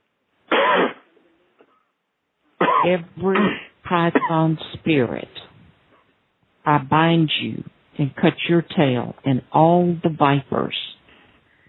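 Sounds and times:
deep harsh cough with throat clearing: 0.5 - 1.2, 2.6 - 4.5
speech: 2.8 - 5.4, 6.6 - 10.9.

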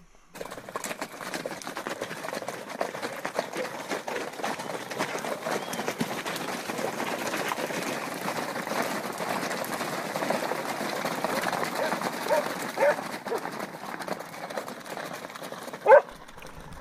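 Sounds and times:
horse hooves clopping on a hard street: 0.3 - 16.7
dog barking: 11.8 - 13.4, 15.8 - 16.7.

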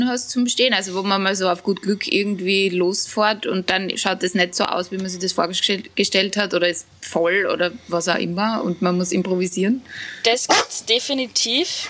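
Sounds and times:
speech: 0.0 - 11.8
large dog barking: 10.5 - 10.7.

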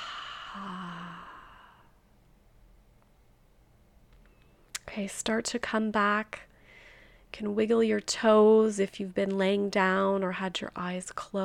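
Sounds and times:
long exhale during guided breathing exercise: 0.0 - 2.0, 6.6 - 7.3
speech: 0.6 - 0.9, 5.0 - 6.5, 7.3 - 11.4.

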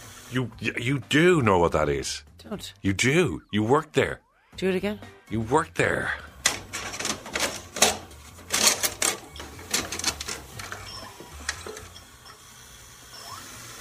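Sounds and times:
speech: 0.3 - 6.3
VHS cassette being pushed into a video recorder: 6.4 - 12.1.

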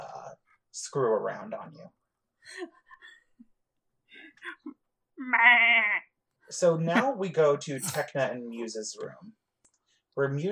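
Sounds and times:
speech: 0.8 - 3.2, 4.4 - 9.4, 10.2 - 10.5
goat bleating: 5.2 - 6.1.

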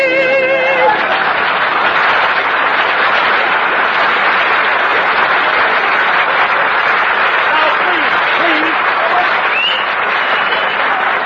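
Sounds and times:
audience applause after a sung comic performance: 0.0 - 11.2.

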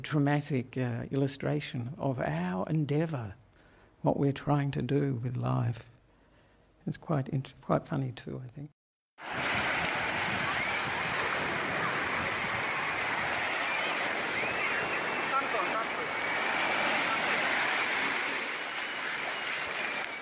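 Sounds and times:
speech: 0.0 - 3.4, 4.0 - 5.9, 6.8 - 9.4
ocean surf breaking on the shore: 9.2 - 20.2.

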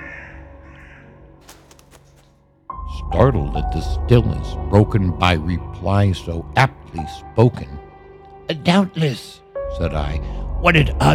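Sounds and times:
bird giving harsh croaking caws: 0.0 - 2.3
speech: 3.1 - 7.9, 8.5 - 11.1.

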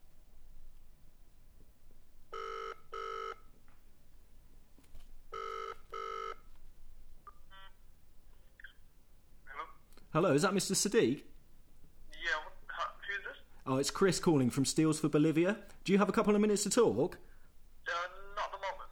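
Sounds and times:
faint hiss: 0.0 - 18.9
telephone ringing tone over a loudspeaker: 2.3 - 3.5, 5.3 - 6.5
speech: 10.1 - 11.3, 13.7 - 17.3.

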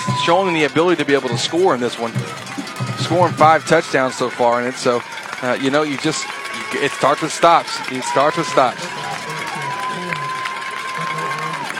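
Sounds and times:
home stadium crowd cheering at a football game: 0.0 - 11.7
speech: 0.2 - 8.9.

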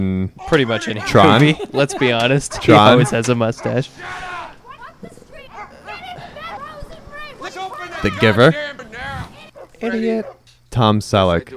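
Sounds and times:
speech: 0.0 - 4.3, 8.0 - 8.7, 9.8 - 11.5
laughter: 0.4 - 9.5
dog in a film barking in high yapping barks: 2.5 - 7.4, 9.5 - 10.5.

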